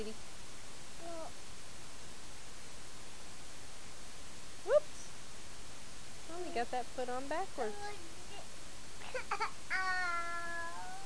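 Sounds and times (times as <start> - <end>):
speech: 0.0 - 0.4, 6.6 - 8.2, 9.1 - 10.0
tired baby fussing and whimpering: 9.1 - 11.0.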